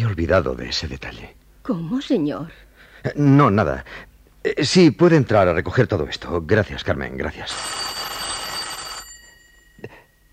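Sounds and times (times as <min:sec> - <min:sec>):
speech: 0:00.1 - 0:08.0
telephone bell ringing: 0:07.5 - 0:10.3.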